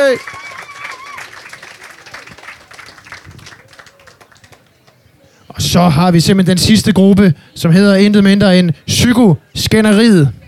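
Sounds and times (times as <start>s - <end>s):
cheers: 0.0s - 4.6s
audience clapping: 0.0s - 5.0s
speech: 0.1s - 0.5s, 5.7s - 10.4s.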